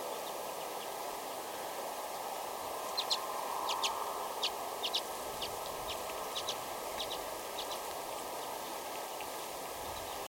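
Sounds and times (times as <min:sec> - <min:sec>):
background hiss: 0:00.0 - 0:10.2
Common redpoll Acanthis flammea chattering: 0:02.9 - 0:10.2.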